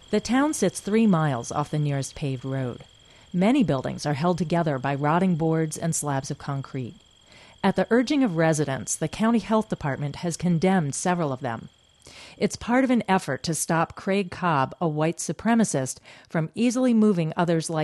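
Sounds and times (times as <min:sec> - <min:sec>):
crickets chirping at high noon in a quiet remote rural town: 0:00.0 - 0:14.0
speech: 0:00.1 - 0:07.0, 0:07.6 - 0:17.8.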